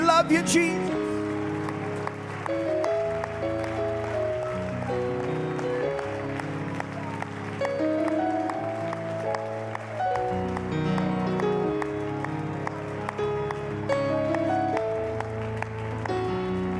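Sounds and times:
audience clapping: 0:00.0 - 0:16.7
sustained organ or keyboard chords: 0:00.0 - 0:16.7
speech: 0:00.2 - 0:00.9.

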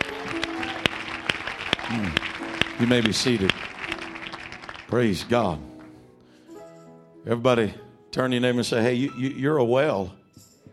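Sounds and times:
church congregation clapping hands: 0:00.0 - 0:06.0
speech: 0:01.9 - 0:03.7, 0:04.9 - 0:05.7, 0:07.2 - 0:10.2.

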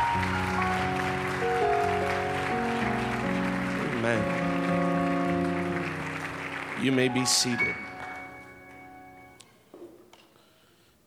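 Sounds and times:
audience clapping hands in praise: 0:00.0 - 0:08.6
sustained organ chords: 0:00.0 - 0:09.4
speech: 0:04.1 - 0:04.5, 0:06.8 - 0:07.9.

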